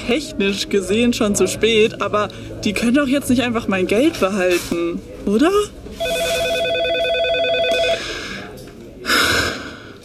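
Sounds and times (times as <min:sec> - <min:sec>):
speech: 0:00.1 - 0:06.2
steady telephone tone: 0:06.0 - 0:08.0.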